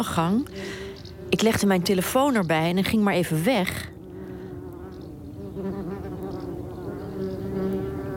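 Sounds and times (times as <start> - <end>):
speech: 0.0 - 3.9
wasps and bumblebees droning at a hole in a meadow: 0.0 - 8.1.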